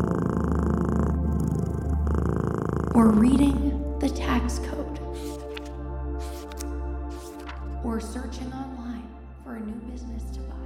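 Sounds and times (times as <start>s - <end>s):
cat purring: 0.0s - 7.3s
speech: 3.0s - 5.4s.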